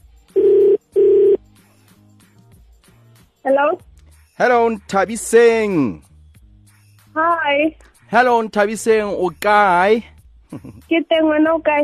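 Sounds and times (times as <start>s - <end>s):
telephone ringing in electronic bursts: 0.4s - 1.4s
speech: 3.4s - 6.1s, 7.2s - 11.8s.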